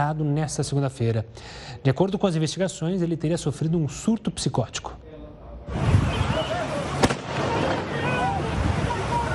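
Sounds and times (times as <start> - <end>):
speech: 0.0 - 5.0
wind-like outdoor noise: 0.0 - 9.3
rifle gunshot: 7.0 - 7.9.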